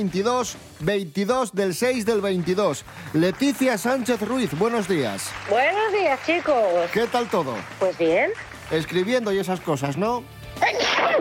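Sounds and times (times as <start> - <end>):
speech: 0.0 - 11.1
person sneezing: 10.6 - 11.1.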